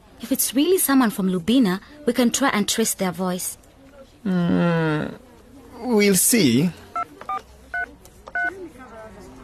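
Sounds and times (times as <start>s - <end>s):
speech: 0.2s - 3.6s, 4.2s - 5.2s, 5.8s - 6.8s
touch-tone telephone dialing beeps: 7.0s - 8.5s.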